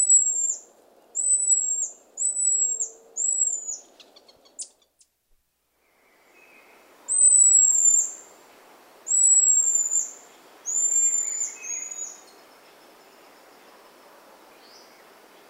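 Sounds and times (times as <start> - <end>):
Buffy-headed marmoset whistled calls: 0.0 - 0.6, 1.2 - 4.7, 7.1 - 8.2, 9.1 - 10.1, 10.7 - 12.2
soft hiss: 0.0 - 15.4.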